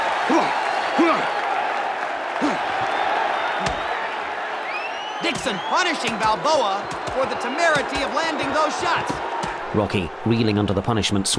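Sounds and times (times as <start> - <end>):
individual shouts and yells from boxing crowd: 0.0 - 10.3
large boxing crowd cheering: 0.0 - 11.3
speech: 5.4 - 11.3.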